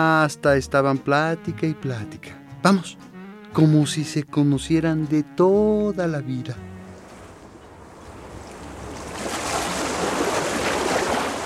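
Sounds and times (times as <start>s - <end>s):
speech: 0.0s - 6.7s
ocean waves washing onto a beach: 6.6s - 11.4s.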